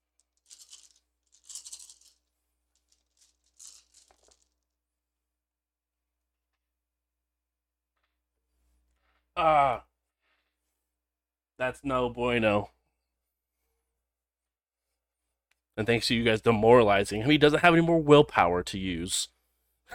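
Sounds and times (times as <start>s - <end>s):
dice rattling and clattering across a surface in a game: 0.1s - 4.7s
short loud vocal exclamation: 9.4s - 9.9s
speech: 9.4s - 9.9s, 11.6s - 12.8s, 15.8s - 19.9s.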